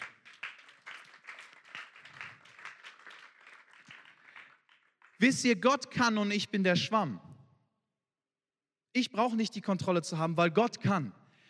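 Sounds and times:
crowd applauding: 0.0 - 5.3
speech: 5.2 - 7.3, 9.0 - 11.2.

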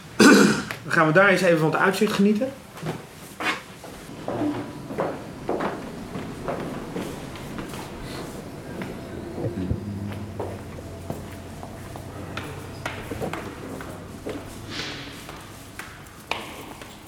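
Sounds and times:
speech: 0.9 - 3.1
hard-soled footsteps of people walking through an echoing building: 2.7 - 17.0
faint murmur: 4.1 - 16.3
low hum: 4.1 - 16.3.

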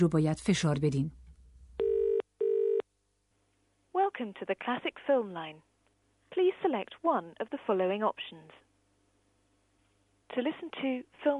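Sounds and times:
speech: 0.0 - 1.2, 4.2 - 5.7, 6.3 - 8.6, 10.3 - 11.3
telephone ringback tone on a call to a cinema's phone line: 1.8 - 2.8.

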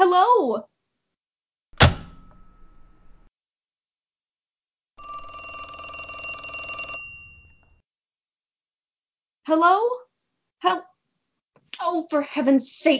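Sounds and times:
speech: 0.2 - 0.7, 9.5 - 10.0, 10.6 - 10.9, 11.8 - 12.9
sharp clank with a short ringing decay: 1.8 - 3.2
loud sustained telephone bell ringing: 5.0 - 7.8.

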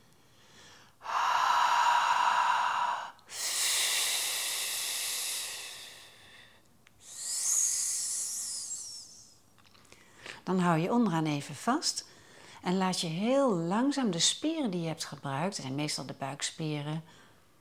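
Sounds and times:
long exhalations blown out as the letters H, F and S in a breathing exercise: 0.3 - 9.4
speech: 10.5 - 17.2.

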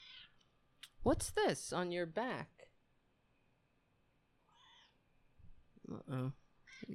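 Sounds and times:
speech: 1.0 - 2.6, 5.8 - 6.9
cat meowing: 4.5 - 5.0.

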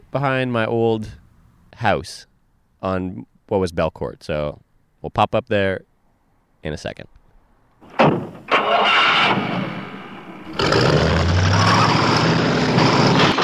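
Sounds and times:
speech: 0.1 - 5.9, 6.6 - 7.2
sharp mechanical clunks of a bus: 7.8 - 10.4
bus engine rumbling during ride: 7.8 - 13.3.

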